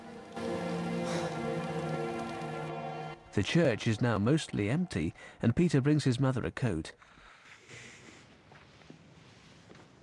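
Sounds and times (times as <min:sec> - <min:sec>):
steady rain falling outside over a crowd: 0:00.0 - 0:04.4
low tonal drone: 0:00.0 - 0:05.2
speech: 0:03.4 - 0:07.8.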